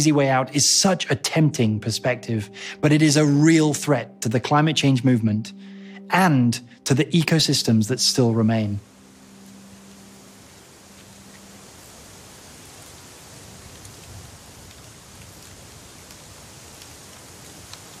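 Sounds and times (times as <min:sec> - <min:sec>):
speech: 0:00.0 - 0:08.9
wind moving through eucalyptus leaves in a plantation: 0:08.8 - 0:17.9
faint ticks in a eucalyptus plantation: 0:13.7 - 0:17.9.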